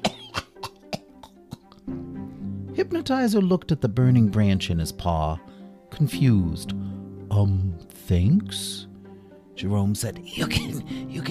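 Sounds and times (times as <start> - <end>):
harsh coughing fit: 0.0 - 1.8
speech: 2.8 - 8.9, 9.6 - 11.2.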